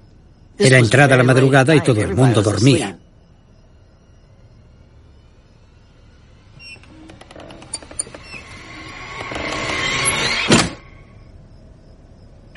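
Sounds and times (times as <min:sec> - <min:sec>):
speech: 0:00.6 - 0:03.0
door creaking and swinging open: 0:06.4 - 0:11.2.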